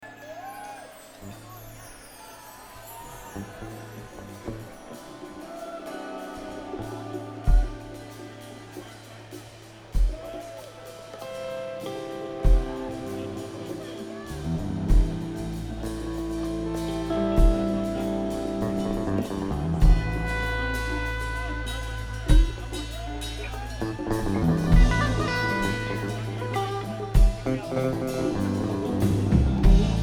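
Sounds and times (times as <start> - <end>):
drums jam: 4.6 - 30.0.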